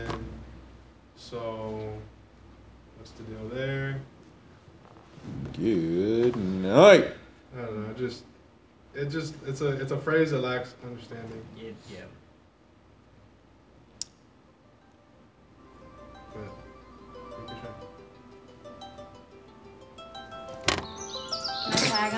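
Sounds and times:
speech: 1.3s - 2.2s, 3.0s - 4.2s, 5.2s - 8.3s, 9.0s - 12.2s
chirpy electronic alarm tone: 20.8s - 22.1s.

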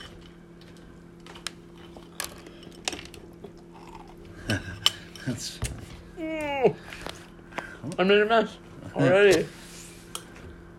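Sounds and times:
steady low hum: 0.0s - 10.7s
crunchy chewing of cereal: 0.8s - 4.6s
speech: 5.3s - 5.7s, 8.0s - 9.6s.

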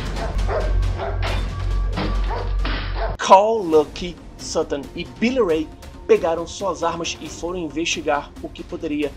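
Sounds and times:
family dog barking frantically: 0.1s - 1.4s, 2.2s - 3.2s
speech: 3.3s - 9.1s.

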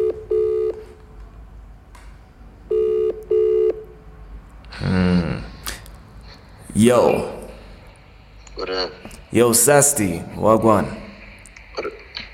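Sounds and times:
telephone ringback tone of an outgoing call: 0.0s - 0.9s, 2.7s - 3.8s
speech: 6.8s - 7.4s, 8.7s - 11.0s.

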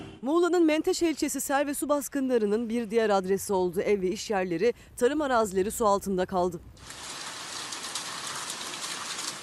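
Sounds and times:
speech: 0.2s - 7.1s
heavy rain pouring down: 6.8s - 9.4s.

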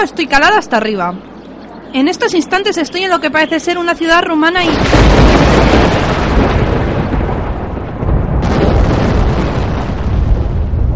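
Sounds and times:
speech: 0.0s - 1.3s, 1.9s - 6.6s
Vesuvius volcano erupting at Pompeii: 4.7s - 10.9s.

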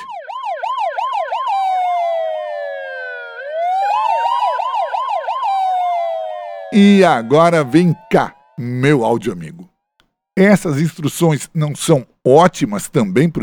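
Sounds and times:
ambulance siren yelping and wailing: 0.0s - 9.6s
speech: 6.7s - 9.7s, 10.4s - 13.4s.

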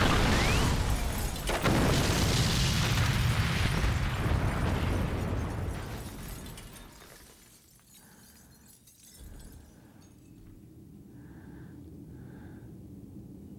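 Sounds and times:
huge explosion in an action film scene: 0.0s - 6.8s.

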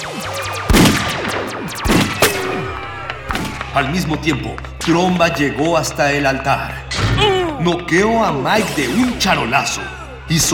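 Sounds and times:
gunfire exchange between a 9 mm pistol and guards: 0.7s - 3.7s
speech: 3.7s - 10.5s.

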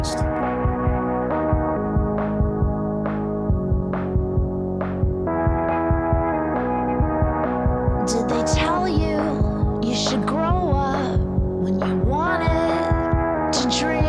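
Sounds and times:
vocal-like sounds: 0.0s - 0.9s, 8.0s - 14.0s
bright synth sounds: 0.0s - 14.0s
filtered drum beat with long reverb: 0.0s - 14.0s.

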